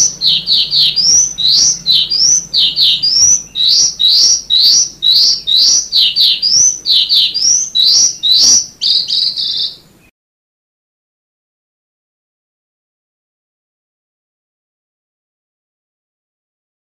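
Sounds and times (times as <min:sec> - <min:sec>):
sanma bird high upslurred notes and trill: 0:00.0 - 0:10.0.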